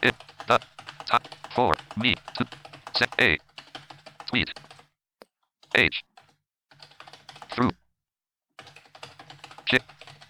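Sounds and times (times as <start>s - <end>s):
speech: 0.0s - 0.7s, 1.6s - 3.4s
typing on a computer keyboard: 0.0s - 4.9s, 5.6s - 7.6s, 8.6s - 10.2s.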